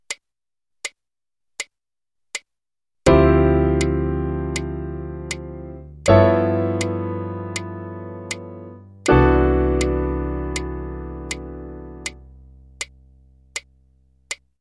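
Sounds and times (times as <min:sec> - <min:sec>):
piano played with the right hand: 0:03.1 - 0:12.4.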